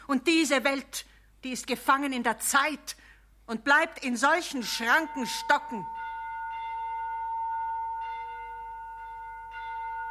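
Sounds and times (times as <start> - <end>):
speech: 0.1 - 6.0
church bells ringing: 4.6 - 10.0.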